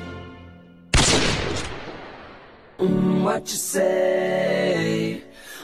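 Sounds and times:
single loud gunshot: 0.9s - 2.8s
speech: 3.4s - 5.3s.

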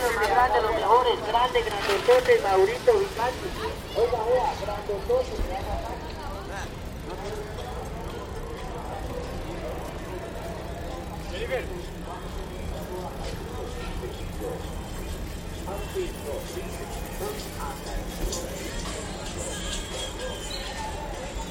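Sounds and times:
chatter from people on a busy city centre street: 0.0s - 21.4s
steady low rumble of traffic and engines in a city centre street: 0.0s - 21.4s
speech: 0.4s - 5.9s, 11.5s - 11.8s.

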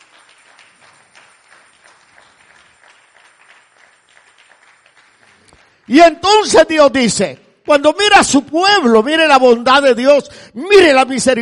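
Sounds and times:
crowd clapping: 0.0s - 8.5s
speech: 5.9s - 11.3s.

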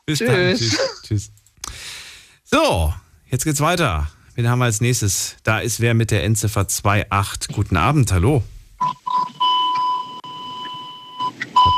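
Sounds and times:
speech: 0.1s - 1.4s, 2.5s - 9.0s
laughter: 0.3s - 1.2s
loud electronic high-tone beeping on a phone line: 8.8s - 11.7s.

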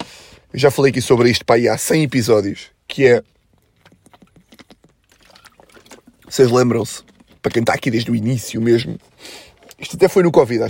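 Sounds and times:
speech: 0.5s - 3.4s, 6.3s - 10.6s
person drinking water with wet clicks and gulps: 3.3s - 9.9s.

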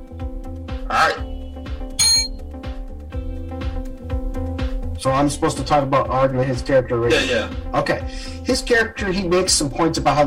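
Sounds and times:
steady rhythmic music with a low thumping pulse: 0.0s - 10.2s
speech: 0.9s - 1.2s, 5.0s - 10.2s
hand bell rung to signal a speaker's time is up: 2.0s - 2.3s.

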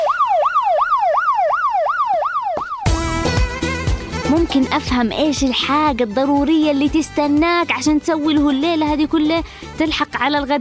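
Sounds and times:
ambulance siren wailing: 0.0s - 3.0s
busy music: 2.9s - 10.5s
speech: 4.4s - 10.5s.

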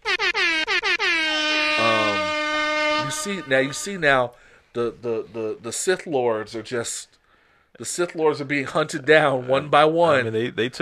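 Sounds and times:
air horn blasts: 0.0s - 4.2s
speech: 3.2s - 10.7s.

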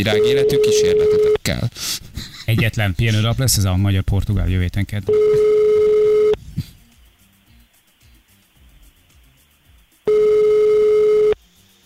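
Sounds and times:
telephone ringback tone of an unanswered call: 0.0s - 1.4s, 5.1s - 6.4s, 10.1s - 11.4s
speech: 0.0s - 5.5s.

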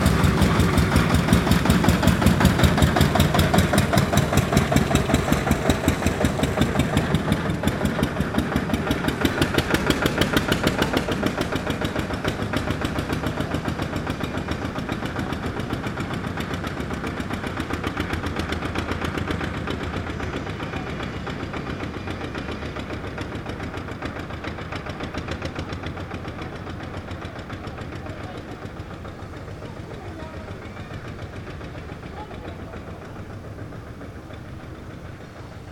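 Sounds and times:
tractor diesel engine chugging at a construction site: 0.0s - 35.6s.

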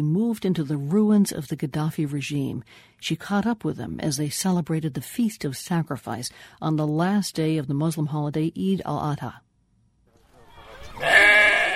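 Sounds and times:
speech: 0.0s - 9.4s
quieter noise: 0.0s - 11.7s
sheep bleating: 11.0s - 11.7s.

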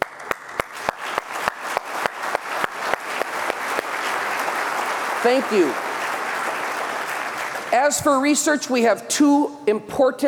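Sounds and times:
audience applauding standing volunteers: 0.0s - 8.2s
speech: 5.2s - 5.8s, 7.7s - 10.2s.

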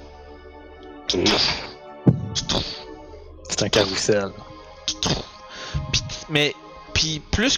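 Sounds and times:
speech: 1.1s - 1.7s, 3.6s - 5.3s, 6.3s - 7.5s
heavy hoofbeats of a four-legged animal walking: 2.1s - 2.9s
steady hum: 2.1s - 4.9s.

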